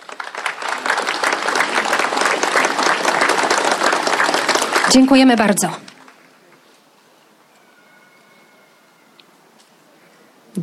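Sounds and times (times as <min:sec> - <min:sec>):
large audience applauding: 0:00.0 - 0:06.7
speech: 0:04.9 - 0:05.8.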